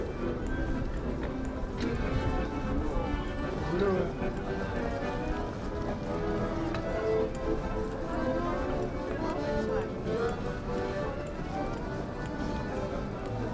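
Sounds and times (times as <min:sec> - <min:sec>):
Christmas market crowd murmuring in Cologne: 0:00.0 - 0:13.5
footsteps: 0:00.0 - 0:13.5.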